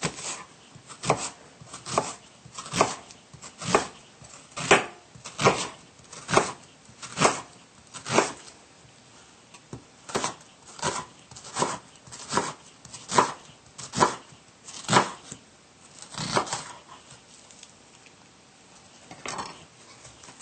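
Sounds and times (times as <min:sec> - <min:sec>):
knife slicing half of a peeled onion into thin strips on a board: 0:00.0 - 0:08.5, 0:10.1 - 0:15.4, 0:16.0 - 0:17.2.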